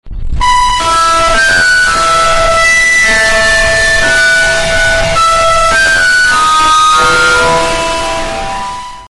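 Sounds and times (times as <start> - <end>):
loud Android phone ringtone: 0.4 - 9.0.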